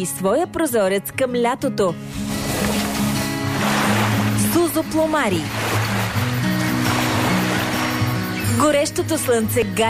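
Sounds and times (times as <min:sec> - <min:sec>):
speech: 0:00.0 - 0:02.4, 0:04.8 - 0:05.8, 0:08.6 - 0:09.8
waves washing onto a seashore in summer with a sea breeze: 0:02.1 - 0:08.3.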